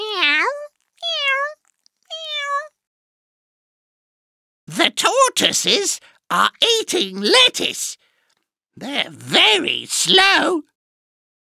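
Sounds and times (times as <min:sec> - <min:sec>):
kittens meowing: 0:00.0 - 0:02.7
speech: 0:04.8 - 0:08.0, 0:08.8 - 0:10.7.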